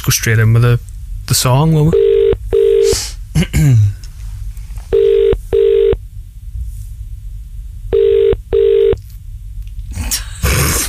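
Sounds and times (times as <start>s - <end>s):
speech: 0.0s - 2.2s, 2.9s - 4.0s
double-pulse ringback tone of an outgoing phone call through the earpiece: 2.0s - 3.0s, 4.9s - 6.0s, 7.9s - 9.0s.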